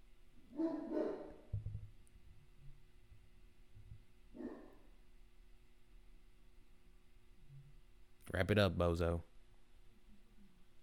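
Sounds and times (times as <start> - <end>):
dog barking: 0.5 - 1.5, 4.4 - 4.9
speech: 8.3 - 9.3.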